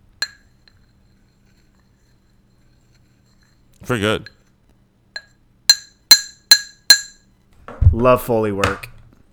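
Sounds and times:
speech: 3.8 - 4.4, 8.0 - 8.9
battery tapping against a glass: 5.2 - 7.2.

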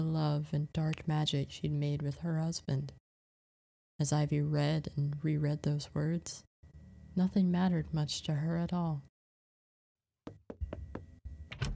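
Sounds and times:
speech: 0.0 - 3.0, 4.0 - 6.5, 7.2 - 9.1
knocking on a wooden door: 10.3 - 11.1.

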